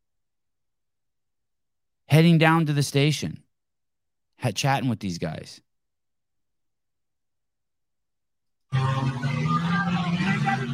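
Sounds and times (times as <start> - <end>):
speech: 2.1 - 3.4, 4.4 - 5.6
car engine roaring at high revs: 8.7 - 10.7.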